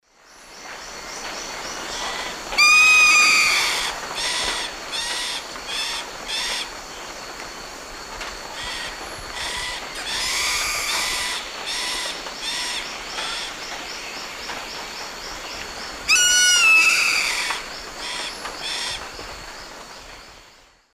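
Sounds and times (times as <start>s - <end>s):
Daptrius ater calls in the Eastern Lowlands of South America: 2.0s - 6.7s, 8.6s - 13.6s, 16.1s - 19.0s.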